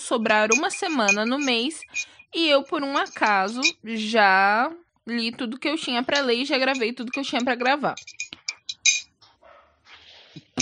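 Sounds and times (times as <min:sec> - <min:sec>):
speech: 0:00.1 - 0:08.2
clinks of glass being handled by a man: 0:00.3 - 0:03.8, 0:06.1 - 0:09.2, 0:10.4 - 0:10.6
dog barking faintly outside: 0:09.4 - 0:09.8.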